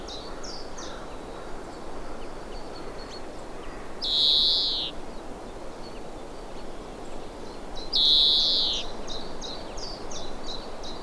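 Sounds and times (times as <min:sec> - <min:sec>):
European greenfinch Chloris chloris rattling trills: 0:04.0 - 0:04.9, 0:07.9 - 0:08.9.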